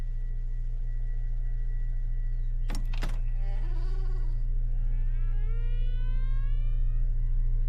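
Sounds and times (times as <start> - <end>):
steady low room hum: 0.0 - 7.6
bedroom door creaking open: 2.7 - 4.0.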